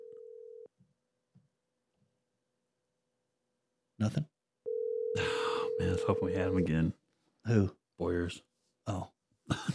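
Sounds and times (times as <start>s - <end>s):
phone ringing tone on an outgoing call: 0.0s - 0.7s, 4.7s - 6.7s
speech: 4.0s - 4.3s, 5.2s - 9.7s.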